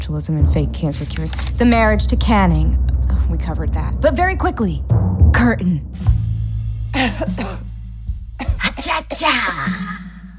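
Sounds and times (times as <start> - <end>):
steady low hum: 0.0 - 10.3
speech: 0.1 - 6.2, 6.9 - 7.6, 8.8 - 10.0
person coughing harshly: 7.0 - 7.7, 8.4 - 10.2.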